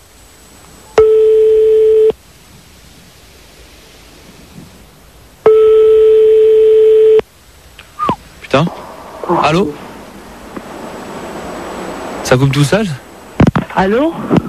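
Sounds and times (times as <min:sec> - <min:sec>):
quiet telephone line hiss: 0:00.0 - 0:14.4
telephone ringing tones of a dialed outgoing call: 0:01.0 - 0:02.2, 0:05.4 - 0:07.2
speech: 0:08.6 - 0:09.8, 0:12.3 - 0:13.0, 0:13.8 - 0:14.4.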